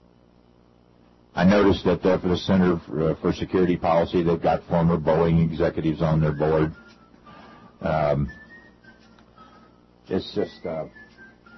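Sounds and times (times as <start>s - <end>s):
speech: 1.4s - 6.8s, 7.8s - 8.4s, 10.1s - 11.0s
faint thin whistled tones: 6.3s - 11.5s.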